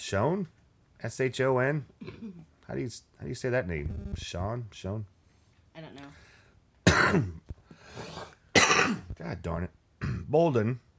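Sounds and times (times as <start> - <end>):
speech: 0.1 - 5.2, 7.1 - 7.4, 8.9 - 10.9
harsh cough blamed on damp weather and trees: 2.0 - 2.4, 6.8 - 7.4, 8.0 - 9.1, 10.0 - 10.3.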